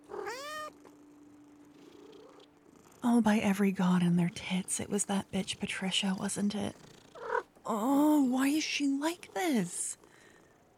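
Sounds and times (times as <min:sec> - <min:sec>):
faint steady hum: 0:00.0 - 0:10.7
cat meowing: 0:00.1 - 0:00.8
speech: 0:03.0 - 0:06.9, 0:07.7 - 0:10.0.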